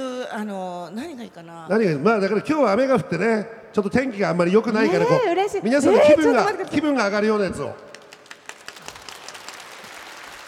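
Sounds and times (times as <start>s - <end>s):
speech: 0.3s - 7.9s
laughter: 4.8s - 7.0s
audience applause: 7.9s - 10.4s.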